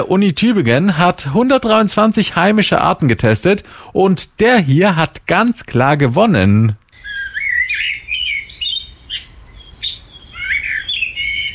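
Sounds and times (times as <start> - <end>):
speech: 0.0 - 6.8
blackbird singing: 7.0 - 11.5.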